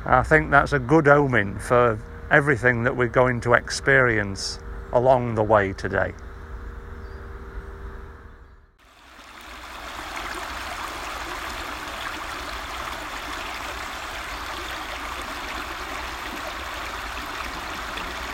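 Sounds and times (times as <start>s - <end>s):
speech: 0.0s - 6.2s
water trickling and burbling over rocks: 8.8s - 18.3s.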